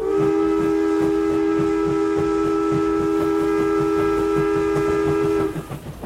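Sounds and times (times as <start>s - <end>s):
steam train whistle: 0.0s - 5.9s
locomotive chugging: 0.0s - 6.0s.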